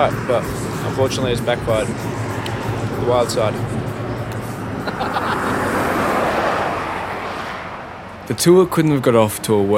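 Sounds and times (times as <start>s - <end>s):
speech: 0.0s - 2.2s, 3.0s - 3.8s, 8.3s - 9.7s
wind buffeting: 0.0s - 8.4s
traffic roar on the Hume Highway from the roadside: 0.0s - 9.7s
laughter: 4.8s - 5.9s.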